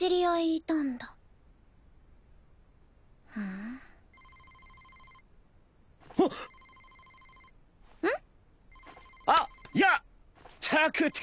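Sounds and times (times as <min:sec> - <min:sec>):
speech: 0:00.0 - 0:01.2, 0:06.2 - 0:06.5, 0:10.7 - 0:11.2
phone electronic ringtone: 0:04.1 - 0:05.3, 0:06.1 - 0:07.6, 0:08.7 - 0:09.8.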